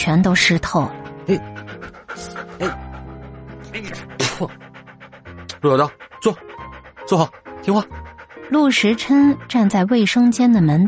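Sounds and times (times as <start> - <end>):
speech: 0.0 - 1.5, 2.6 - 2.8, 3.8 - 4.6, 5.6 - 6.5, 7.1 - 10.8
dog panting while being bathed: 0.0 - 10.8.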